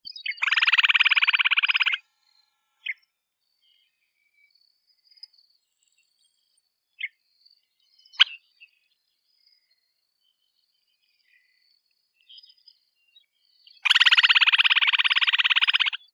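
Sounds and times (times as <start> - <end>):
Upland Sandpiper calling: 0.4 - 2.0, 13.8 - 16.0.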